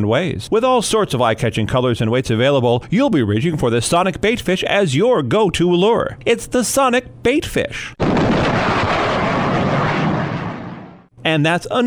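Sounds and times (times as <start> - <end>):
speech: 0.0 - 8.5, 11.2 - 11.8
jet fighter sonic boom sound effect: 8.0 - 11.1.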